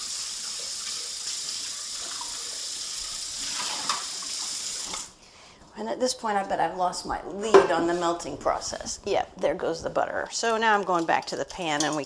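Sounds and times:
water gushing from a kitchen tap as a bowl is rinsed out: 0:00.0 - 0:05.2
speech: 0:05.8 - 0:12.0.

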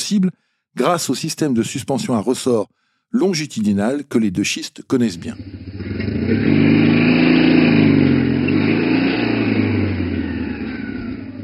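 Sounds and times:
speech: 0:00.1 - 0:06.8
racing barquette two-cylinder 348 cc engine revving: 0:05.1 - 0:11.4.

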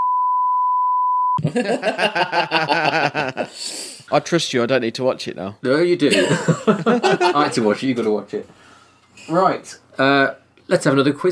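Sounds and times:
censor bleep tone: 0:00.0 - 0:01.4
people laughing: 0:01.4 - 0:03.5, 0:06.1 - 0:07.8
speech: 0:01.4 - 0:11.2.

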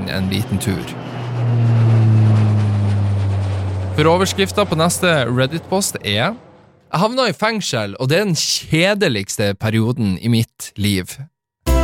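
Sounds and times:
airplane engine drone of a plane flying over the sea: 0:00.0 - 0:07.0
speech: 0:00.1 - 0:01.9, 0:04.0 - 0:11.3.

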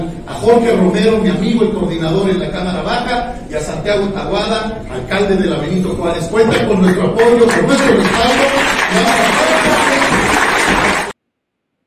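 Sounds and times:
speech: 0:00.0 - 0:09.4
crowd applauding at a political event: 0:06.9 - 0:11.2.

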